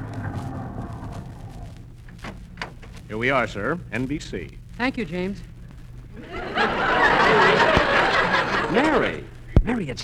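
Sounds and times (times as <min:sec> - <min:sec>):
car engine rumbling as car rolls in and stops: 0:00.0 - 0:03.1
speech: 0:03.1 - 0:05.5, 0:08.7 - 0:10.0
laughter: 0:06.2 - 0:09.3.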